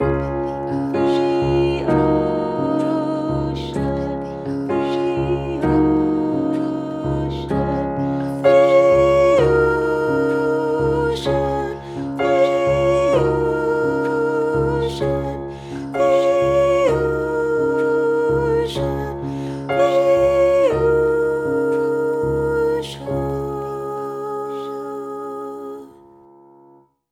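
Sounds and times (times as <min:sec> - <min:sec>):
closing musical harmony: 0:00.0 - 0:26.2.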